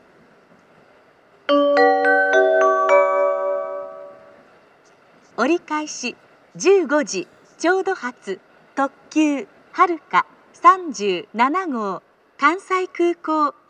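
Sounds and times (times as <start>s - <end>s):
limited express train at station: 0.0s - 13.4s.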